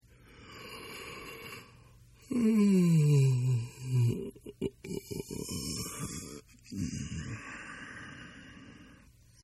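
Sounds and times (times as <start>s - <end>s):
person yawning: 2.2s - 8.8s.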